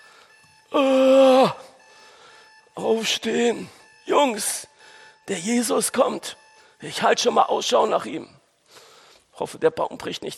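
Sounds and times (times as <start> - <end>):
electronic alarm clock buzzing: 0.0 - 7.9
speech: 0.7 - 1.1, 3.0 - 4.7, 5.3 - 8.8, 9.4 - 10.3.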